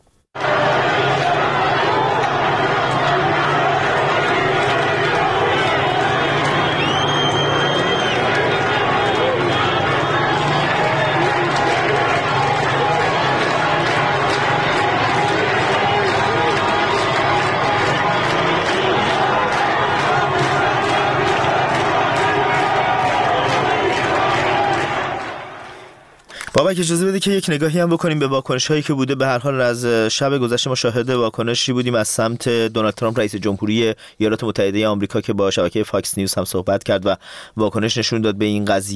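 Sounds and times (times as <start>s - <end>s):
crowd shouting at a street protest in Isfahan: 0.4s - 26.8s
speech: 26.8s - 38.9s.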